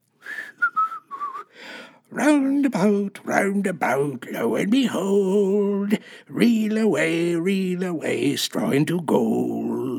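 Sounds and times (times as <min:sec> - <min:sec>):
person whistling a short lilting melody: 0:00.2 - 0:01.5
speech: 0:02.1 - 0:09.8.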